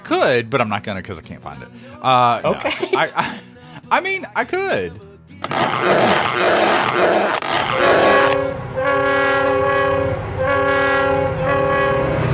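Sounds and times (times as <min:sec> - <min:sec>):
speech: 0:00.1 - 0:08.5
laughter: 0:02.2 - 0:04.0
loud sustained multi-tone train horn: 0:05.5 - 0:12.3
train rumbling along with rhythmic clatter: 0:07.4 - 0:12.3.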